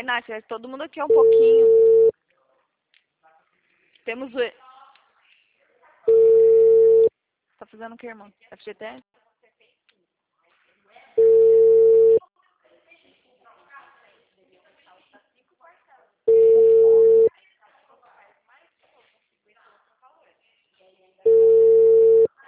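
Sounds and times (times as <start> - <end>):
speech: 0.0 - 1.9, 4.0 - 4.6, 7.6 - 9.2
telephone busy signal: 1.1 - 2.1, 6.1 - 7.1, 11.2 - 12.2, 16.3 - 17.3, 21.3 - 22.3.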